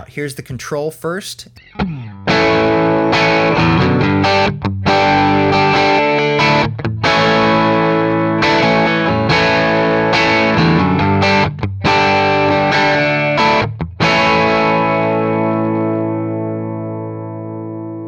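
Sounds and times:
speech: 0.0 - 2.0
distorted electric guitar chords through a guitar amp: 1.6 - 18.0.

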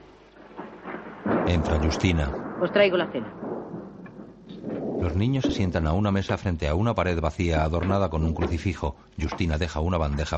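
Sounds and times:
rain-like hiss: 0.0 - 7.8
faint low rumble of thunder: 0.0 - 10.3
speech: 1.5 - 3.5, 5.0 - 10.3.

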